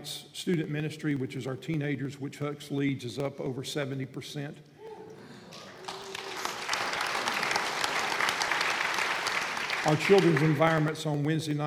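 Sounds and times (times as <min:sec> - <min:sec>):
speech: 0:00.0 - 0:04.7, 0:09.8 - 0:11.6
church audience applause: 0:05.5 - 0:10.9.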